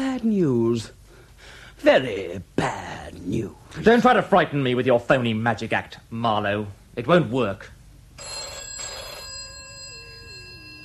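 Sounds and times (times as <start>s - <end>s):
speech: 0.2s - 1.0s, 1.8s - 8.4s
telephone bell ringing: 8.2s - 10.8s.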